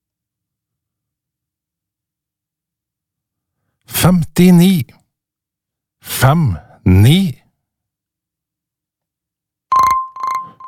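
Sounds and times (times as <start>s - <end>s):
speech: 4.1s - 5.0s, 6.0s - 7.4s
steady pitched tone: 9.7s - 10.6s
telephone ringing with a fast electronic trill: 9.7s - 10.6s.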